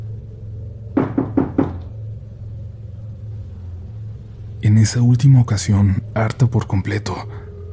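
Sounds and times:
low hum: 0:00.0 - 0:07.7
woman knocking on a door at night: 0:01.0 - 0:01.9
speech: 0:04.8 - 0:07.4.

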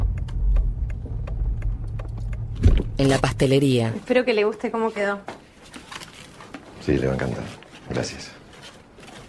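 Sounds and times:
parked car engine idling in Buenos Aires: 0:00.0 - 0:03.3
brief louder thump: 0:02.6 - 0:03.0
speech: 0:03.0 - 0:05.4, 0:06.8 - 0:08.4.

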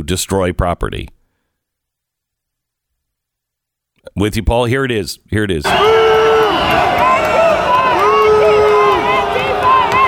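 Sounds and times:
speech: 0:00.0 - 0:01.2, 0:04.1 - 0:07.4
dense loud crowd of yelling voices during a riot: 0:05.6 - 0:10.0
man screaming in long strained bursts during a riot: 0:05.7 - 0:10.0.

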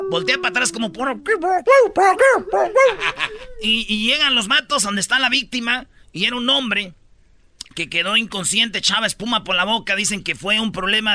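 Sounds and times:
golden retriever giving high whiny yelps: 0:00.0 - 0:03.7
speech: 0:00.1 - 0:07.0, 0:07.7 - 0:11.1
laughter: 0:02.7 - 0:03.6.

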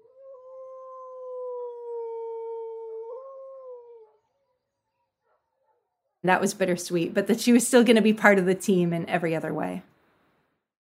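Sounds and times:
sled dog from a racing team howling: 0:00.0 - 0:05.4
speech: 0:06.2 - 0:09.9.

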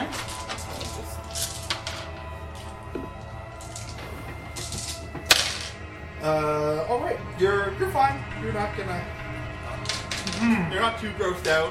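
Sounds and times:
low hum: 0:00.0 - 0:11.7
six dice clattering across a tabletop: 0:00.1 - 0:02.7, 0:03.6 - 0:04.0, 0:04.6 - 0:05.8, 0:09.8 - 0:10.5
speech: 0:06.2 - 0:09.2, 0:10.4 - 0:11.7.

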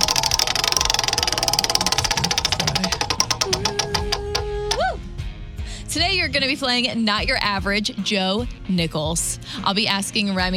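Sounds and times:
game-show prize wheel spinning: 0:00.0 - 0:04.9
speech: 0:06.0 - 0:10.5.

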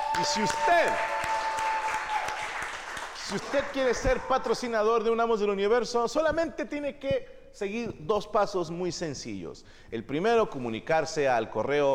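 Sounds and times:
crowd applauding: 0:00.0 - 0:04.2
speech: 0:00.2 - 0:01.3, 0:03.3 - 0:11.9.

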